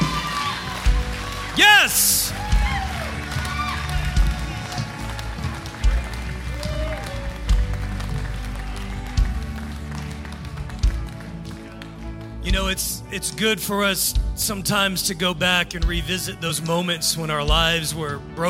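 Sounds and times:
scattered cheers: 0:00.0 - 0:12.1
crowd applauding enthusiastically: 0:00.0 - 0:12.9
speech: 0:01.6 - 0:02.3, 0:12.8 - 0:18.4.

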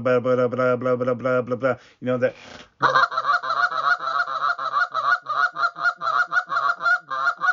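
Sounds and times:
speech: 0:00.0 - 0:03.2
goose honks blown on a goose call: 0:02.8 - 0:07.5.

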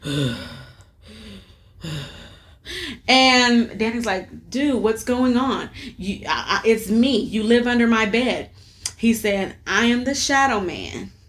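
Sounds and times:
voice imitating heavy creepy rasping breathing: 0:00.0 - 0:03.1
speech: 0:00.1 - 0:00.5, 0:03.1 - 0:11.2.

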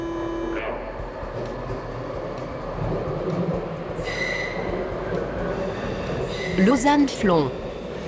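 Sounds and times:
metro train rumbling along its rails: 0:00.0 - 0:08.0
metro train tonal whines: 0:00.0 - 0:08.0
high metro train wheel squeal: 0:04.0 - 0:04.8, 0:05.6 - 0:06.9
speech: 0:06.6 - 0:07.6.

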